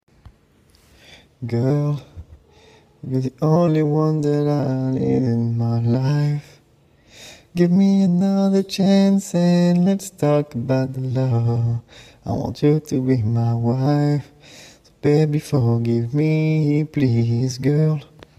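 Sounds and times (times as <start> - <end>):
a cappella 90s RnB singing: 1.3 - 6.8, 7.4 - 18.3.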